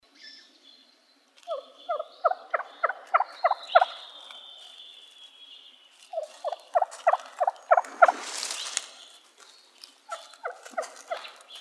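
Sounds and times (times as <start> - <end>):
wild turkey gobbling in Arizona: 1.5 - 4.3, 6.1 - 8.5, 10.1 - 11.4.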